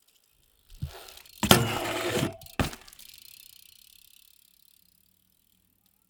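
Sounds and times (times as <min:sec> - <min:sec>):
BMX bike riding off: 0:00.6 - 0:03.5
BMX bike grinding: 0:00.7 - 0:03.3.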